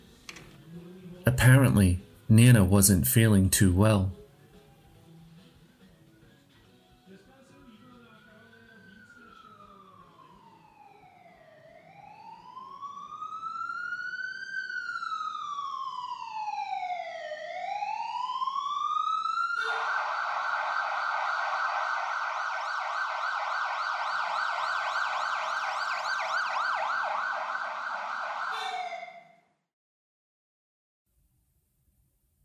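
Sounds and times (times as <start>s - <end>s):
speech: 1.3s - 4.2s
ambulance siren wailing and yelping: 7.6s - 29.6s.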